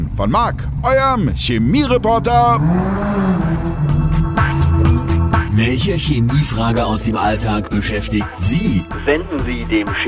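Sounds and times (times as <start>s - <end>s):
speech: 0.2s - 3.6s, 5.6s - 10.0s
motorcycle engine revving: 0.4s - 7.8s.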